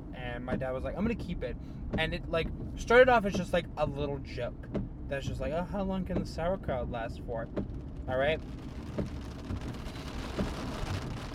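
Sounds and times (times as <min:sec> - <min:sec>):
low rumble: 0:00.0 - 0:11.3
speech: 0:00.4 - 0:09.8, 0:10.4 - 0:10.8
steady rain falling: 0:06.2 - 0:11.3.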